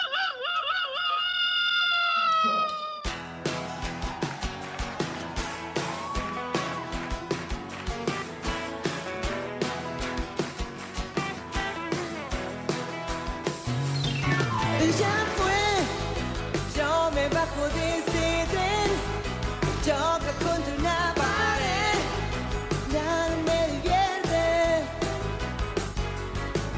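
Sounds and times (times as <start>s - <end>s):
voice imitating a chicken's cackle and a rooster's crow as a homemade doorbell: 0.0s - 3.1s
loud rhythmic music with heavy drums: 3.2s - 26.7s
speech: 17.3s - 19.1s.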